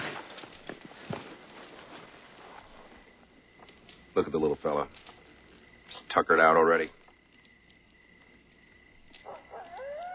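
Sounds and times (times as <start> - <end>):
speech: 4.2 - 5.1, 6.1 - 7.0
coyote howling at night: 9.1 - 10.1.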